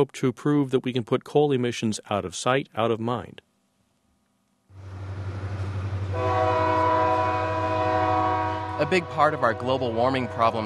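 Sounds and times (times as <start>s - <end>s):
speech: 0.0s - 3.5s, 8.8s - 10.6s
coal train rolling railcars clattering: 4.8s - 10.6s
coal train horn: 6.1s - 10.6s.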